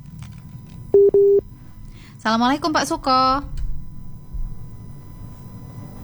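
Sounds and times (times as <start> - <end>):
low rumble: 0.0 - 6.0
telephone line tone of an incoming call from Krian Sidoarjo: 1.0 - 1.4
speech: 2.2 - 3.5.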